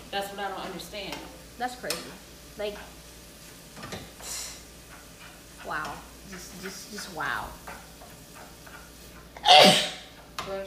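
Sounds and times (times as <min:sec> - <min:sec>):
speech: 0:00.1 - 0:03.0, 0:05.6 - 0:07.9, 0:10.4 - 0:10.6
sneeze: 0:09.4 - 0:10.0.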